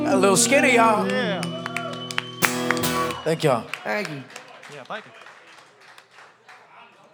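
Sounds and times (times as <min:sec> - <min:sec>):
speech: 0:00.1 - 0:01.3, 0:03.3 - 0:05.2
live crowd applauding: 0:01.0 - 0:07.1.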